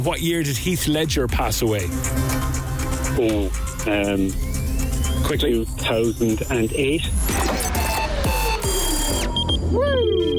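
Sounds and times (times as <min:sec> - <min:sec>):
speech: 0:00.0 - 0:04.6, 0:05.2 - 0:07.4
loud electronic quiz time-up buzzer: 0:04.0 - 0:09.7.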